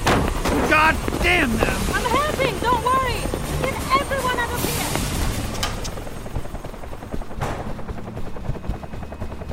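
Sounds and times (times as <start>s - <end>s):
helicopter rotor thumping: 0.0s - 9.5s
speech: 0.8s - 3.2s.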